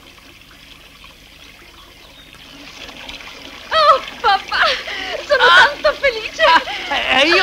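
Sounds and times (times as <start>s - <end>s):
cold water trickling and dripping: 0.0s - 7.4s.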